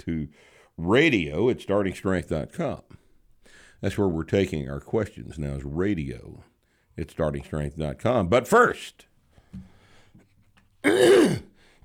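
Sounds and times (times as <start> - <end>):
speech: 0.0 - 3.0, 3.8 - 9.7, 10.8 - 11.5
gruff throat clearing: 10.8 - 11.6.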